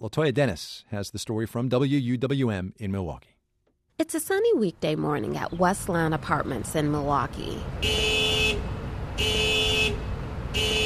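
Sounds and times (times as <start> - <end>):
speech: 0.0 - 3.3, 4.0 - 8.2
low hum of the street: 4.5 - 10.8
car alarm honking outdoors: 7.8 - 10.8.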